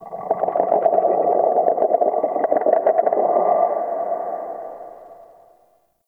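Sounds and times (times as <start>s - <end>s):
low croak texture in dungeon ambience: 0.0s - 5.7s.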